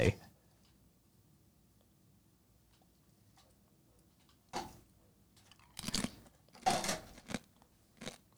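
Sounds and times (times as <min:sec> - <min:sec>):
speech: 0:00.0 - 0:00.2
person crunching on a chip: 0:05.6 - 0:08.3.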